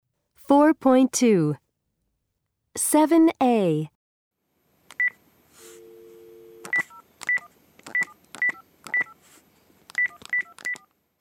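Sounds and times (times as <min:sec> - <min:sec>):
speech: 0:00.5 - 0:01.6, 0:02.8 - 0:04.0
low telephone dial tone hum: 0:05.0 - 0:07.4
telephone keypad beeps: 0:06.6 - 0:09.2, 0:09.9 - 0:11.1.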